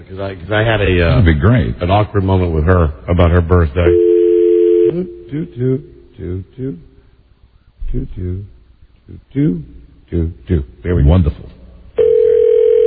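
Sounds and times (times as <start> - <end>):
speech: 0.0 - 4.1, 4.9 - 6.9, 7.9 - 11.6
steady telephone tone as a call is placed: 3.9 - 5.1, 12.0 - 12.8.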